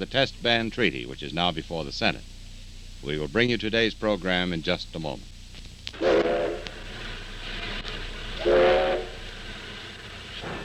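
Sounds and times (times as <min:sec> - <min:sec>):
speech: 0:00.0 - 0:02.4, 0:03.0 - 0:05.3
steam locomotive hissing rumbling background: 0:00.0 - 0:10.6
steam locomotive whistle on its final run through the Colorado Rockies: 0:06.0 - 0:07.0, 0:08.3 - 0:09.4.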